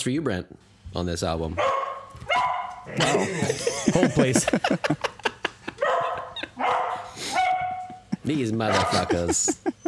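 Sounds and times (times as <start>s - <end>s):
speech: 0.0s - 5.2s, 8.3s - 9.8s
dog barking: 1.6s - 3.4s, 5.7s - 9.8s
laughter: 2.9s - 9.8s.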